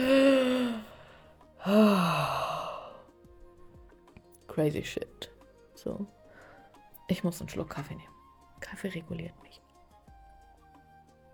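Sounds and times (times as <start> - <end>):
person taking a deep breath with voiced sighs: 0.0 - 3.2, 6.3 - 6.8
speech: 4.6 - 6.2, 7.1 - 9.6.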